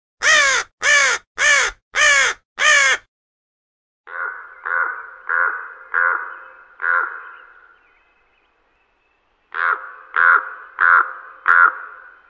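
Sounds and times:
ravens calling to each other: 0:00.2 - 0:03.0, 0:04.1 - 0:07.5, 0:09.5 - 0:12.0.

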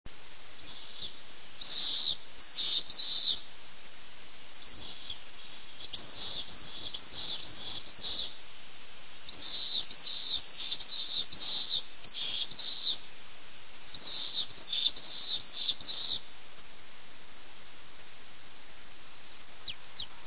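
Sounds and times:
pallid swift Apus pallidus calling: 0:00.6 - 0:03.5, 0:04.6 - 0:08.4, 0:09.2 - 0:13.1, 0:13.9 - 0:16.3, 0:19.3 - 0:20.2.

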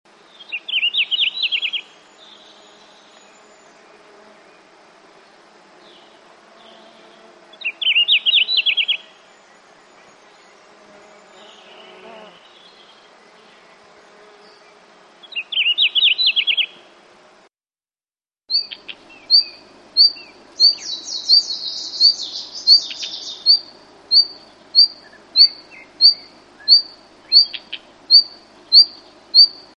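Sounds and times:
Siberian blue robin Luscinia cyane: 0:00.1 - 0:17.0, 0:18.5 - 0:29.7.

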